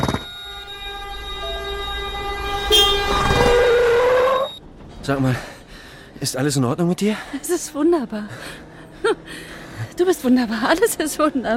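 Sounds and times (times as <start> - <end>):
train horn: 0.9 - 4.5
speech: 5.1 - 5.5, 6.2 - 9.4, 10.0 - 11.5.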